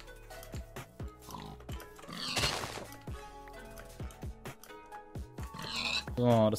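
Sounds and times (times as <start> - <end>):
video game pigs grunting and squealing: 1.1 - 2.9, 5.4 - 6.3.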